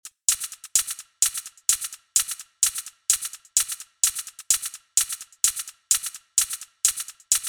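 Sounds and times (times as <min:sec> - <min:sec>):
hi-hat shaker: 0:00.0 - 0:07.4.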